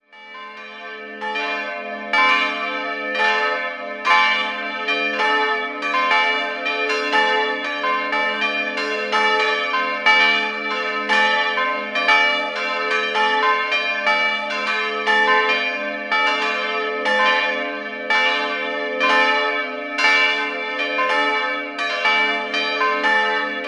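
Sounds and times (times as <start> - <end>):
church bells of Ingolstadt ringing: 0.0 - 23.6.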